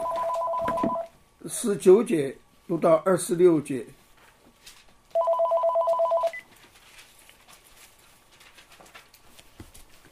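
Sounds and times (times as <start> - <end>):
telephone ringing with steady electronic tone: 0.0 - 1.2, 5.1 - 6.5
speech: 0.8 - 4.0.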